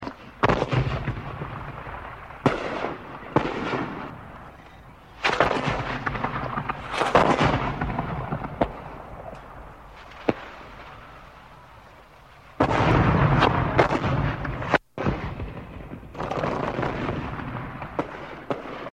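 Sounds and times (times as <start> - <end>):
3D bomb explosion: 0.0 - 18.9.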